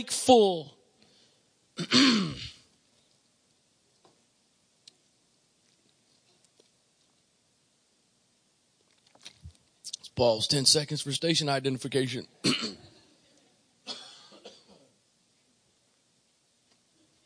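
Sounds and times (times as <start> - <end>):
speech: 0.0 - 0.8, 1.8 - 2.5, 10.2 - 12.8
short rough throat clearing: 1.8 - 2.7, 12.4 - 12.9.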